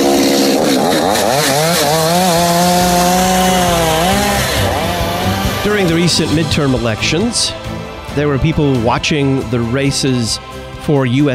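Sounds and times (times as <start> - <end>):
chainsaw cutting wood: 0.0 - 9.4
speech: 6.1 - 7.6, 8.2 - 11.3.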